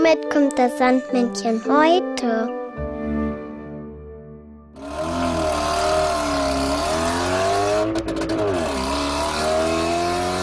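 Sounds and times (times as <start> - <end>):
speech: 0.1 - 2.6
car engine idling, revving and roaring as the car drives off: 4.8 - 10.4.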